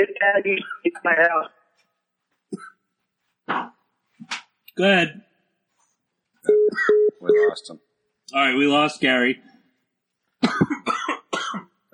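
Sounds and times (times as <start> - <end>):
speech: 0.0 - 1.6, 3.5 - 5.3, 6.7 - 9.5
harsh coughing: 6.7 - 7.1, 10.4 - 11.8.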